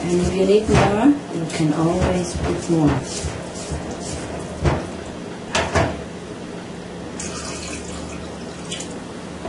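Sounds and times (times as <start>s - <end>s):
speech: 0.1s - 3.8s
water pouring into flour mixture: 7.2s - 9.0s.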